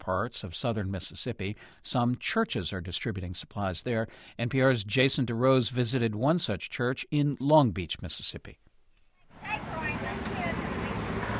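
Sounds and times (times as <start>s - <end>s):
speech: 0.0s - 8.7s
hundreds of cars idling in a church parking lot in Long Beach Mississippi: 9.4s - 11.3s.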